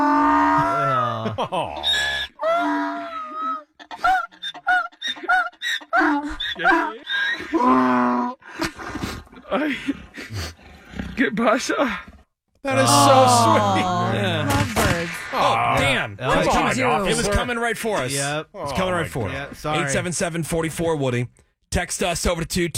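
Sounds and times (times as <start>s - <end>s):
donkey braying hee-haw: 0.0s - 8.4s
laughter: 0.6s - 7.1s, 12.7s - 14.8s, 15.4s - 18.2s
speech: 1.4s - 2.0s, 9.5s - 10.0s, 11.4s - 14.7s, 15.4s - 22.7s.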